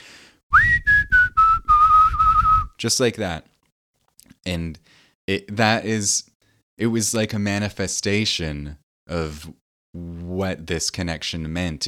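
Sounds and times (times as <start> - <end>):
person whistling a short tune: 0.5 - 2.8
speech: 2.8 - 3.5, 4.4 - 11.8.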